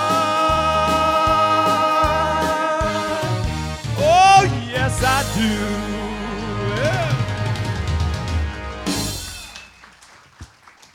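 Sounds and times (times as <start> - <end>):
live gospel song with held vocal line: 0.0 - 9.5
speech: 5.0 - 6.0
audience applause and cheering for the band: 6.8 - 10.9.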